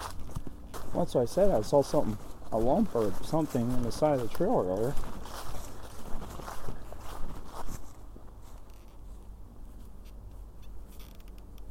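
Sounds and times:
footsteps crunching on a trail: 0.0 - 10.8
outdoor rustling: 0.0 - 11.6
wooden walking staff creaking: 0.0 - 11.6
speech: 0.9 - 5.1.

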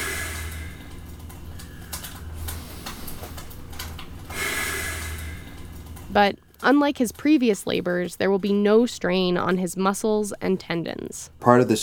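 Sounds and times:
slow deliberate heavy breathing: 0.0 - 3.6, 4.3 - 5.8
speech: 6.1 - 11.8.

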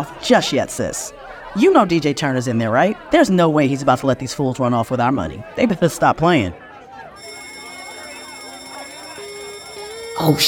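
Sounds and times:
speech: 0.0 - 6.6, 10.2 - 10.4
busy murmur of voices and commotion: 0.0 - 10.4
bank alarm ringing: 7.2 - 10.4.

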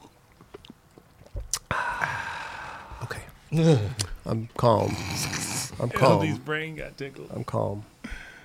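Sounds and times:
person sipping a drink: 0.0 - 2.0, 4.9 - 5.8
speech: 3.5 - 7.9.

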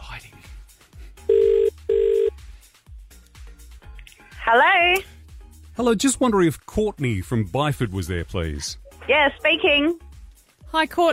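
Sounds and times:
telephone ringback tone on an outgoing call: 1.3 - 2.3
speech: 4.5 - 5.1, 5.8 - 10.0, 10.7 - 11.1.

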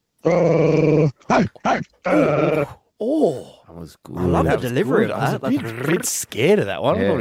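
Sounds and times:
speech: 0.2 - 2.7, 3.8 - 7.1
man imitating a dog growling and snarling: 0.2 - 3.3.

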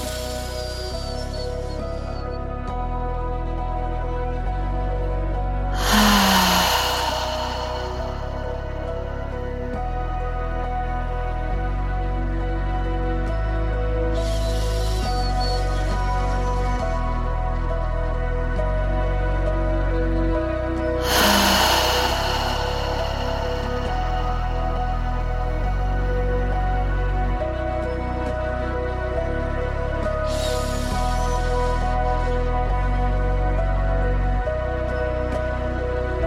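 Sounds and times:
steady low drone: 0.0 - 36.2
deep open-mouthed breaths with audible exhales during a guided meditation: 5.7 - 9.9, 14.2 - 16.1, 21.0 - 27.0, 30.2 - 31.9.

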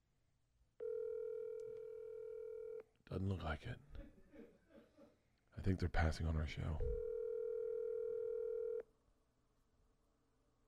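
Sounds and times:
phone call ringback tone: 0.8 - 2.8, 7.0 - 8.8
speech: 3.1 - 4.1, 5.6 - 7.1.

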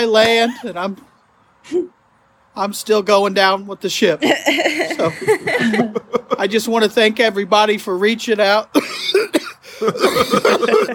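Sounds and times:
speech: 0.0 - 1.1, 1.7 - 2.0, 2.6 - 10.9
person coughing: 0.4 - 0.8, 8.8 - 10.9
laughter: 4.2 - 6.6, 9.7 - 10.9.

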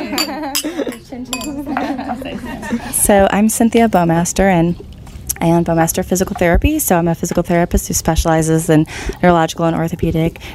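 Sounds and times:
wine glasses clinking in a toast: 0.0 - 1.9
people laughing softly: 0.0 - 3.1
speech: 0.1 - 10.5.

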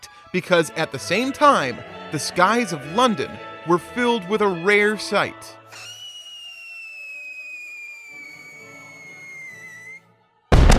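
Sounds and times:
speech: 0.3 - 5.8
firework whistling with falling pitch: 5.7 - 10.0
loud sharp firework explosion: 10.5 - 10.7.

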